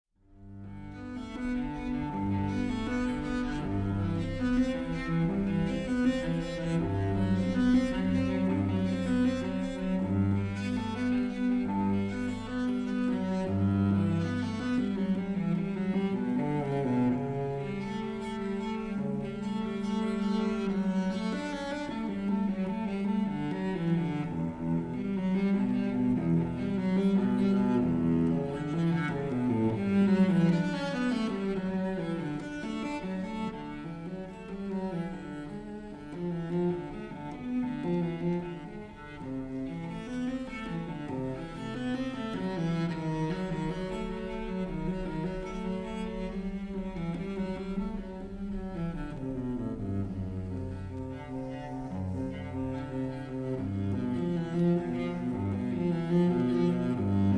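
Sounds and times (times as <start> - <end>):
solo cello piece in G major: 0.2 - 57.3.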